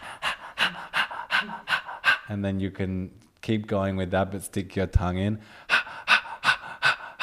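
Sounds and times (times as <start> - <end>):
person panting like a dog as a breathing technique: 0.0 - 2.4, 5.4 - 7.2
speech: 2.3 - 5.6.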